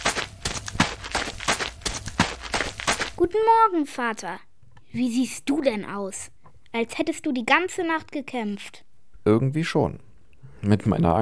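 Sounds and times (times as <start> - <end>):
quick running footsteps: 0.0 - 3.4
speech: 3.2 - 11.2.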